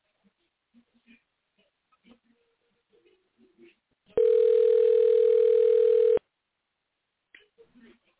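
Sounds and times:
telephone ringback tone: 0:04.2 - 0:06.2.

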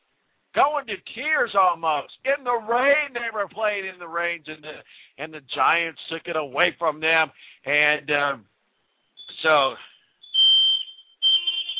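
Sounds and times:
speech: 0:00.6 - 0:08.5, 0:09.4 - 0:09.9
fire alarm going off in a radio studio: 0:08.9 - 0:11.7.

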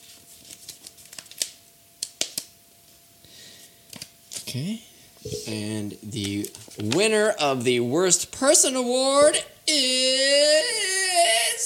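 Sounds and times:
paper envelope being torn open: 0:00.4 - 0:01.6
speech: 0:04.5 - 0:11.6.

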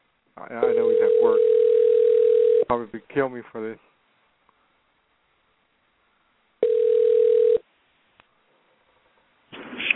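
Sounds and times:
speech: 0:00.4 - 0:01.6, 0:02.7 - 0:03.9
ringback tone through a phone line on an outgoing call: 0:00.6 - 0:02.7, 0:06.6 - 0:07.6.

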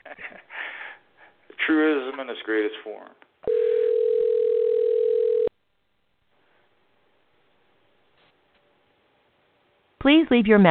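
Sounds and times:
speech: 0:01.7 - 0:03.2, 0:10.0 - 0:10.7
telephone dial tone while calling a number: 0:03.4 - 0:05.5.

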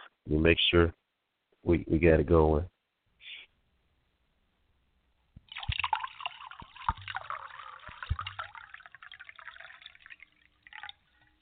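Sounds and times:
speech: 0:00.3 - 0:01.0, 0:01.6 - 0:02.7
wine poured into a glass: 0:05.5 - 0:11.4.

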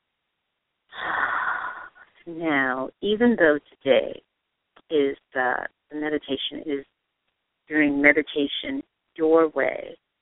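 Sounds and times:
deep inhale during a guided meditation: 0:01.0 - 0:02.1
speech: 0:02.3 - 0:04.2, 0:04.9 - 0:06.9, 0:07.7 - 0:10.0.

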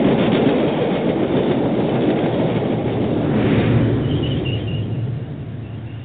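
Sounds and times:
train rumble: 0:00.0 - 0:06.0
faint high squeal: 0:04.0 - 0:06.0.

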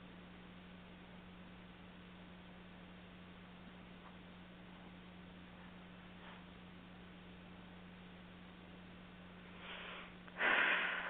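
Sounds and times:
faint steady hum: 0:00.0 - 0:11.0
slow deep breathing in and out: 0:09.5 - 0:11.0.

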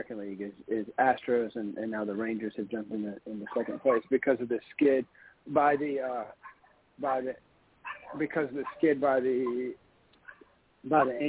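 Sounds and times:
speech: 0:00.0 - 0:07.5, 0:08.1 - 0:09.8, 0:10.8 - 0:11.2
dogs barking inside a house: 0:03.4 - 0:04.1, 0:05.7 - 0:06.8, 0:07.8 - 0:11.2.

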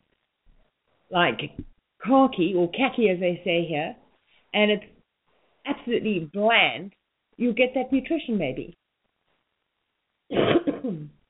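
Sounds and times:
speech: 0:01.1 - 0:04.9, 0:05.7 - 0:08.8, 0:10.3 - 0:11.2
throaty cough: 0:10.3 - 0:11.1.

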